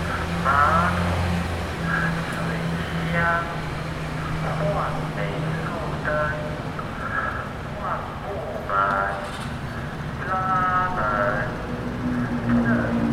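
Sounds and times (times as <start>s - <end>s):
repair van loudspeaker playing a recorded spoken announcement: 0.0s - 13.1s
repair van low engine hum: 0.0s - 13.1s
street traffic murmuring: 0.0s - 13.1s.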